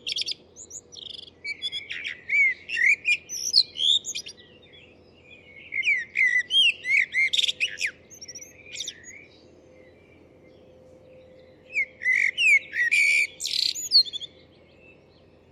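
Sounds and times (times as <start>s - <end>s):
bird chirping and whistling: 0.0s - 4.4s, 5.8s - 9.2s, 11.7s - 14.3s.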